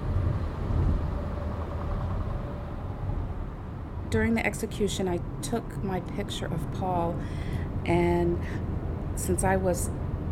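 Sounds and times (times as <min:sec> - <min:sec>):
truck rumbling past: 0:00.0 - 0:10.3
speech: 0:04.1 - 0:10.0.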